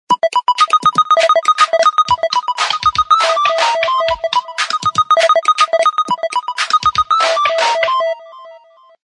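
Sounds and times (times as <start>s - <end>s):
ringtone: 0.1s - 9.0s.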